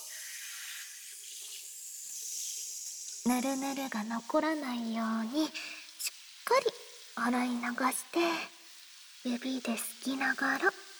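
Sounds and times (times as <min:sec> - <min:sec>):
shower water spraying: 0:00.0 - 0:10.9
speech: 0:03.2 - 0:05.8, 0:06.5 - 0:08.6, 0:09.2 - 0:10.8.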